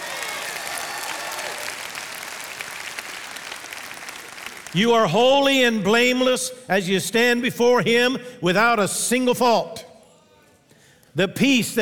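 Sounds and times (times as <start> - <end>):
audience clapping loudly: 0.0 - 5.1
speech: 4.7 - 9.9, 11.2 - 11.8.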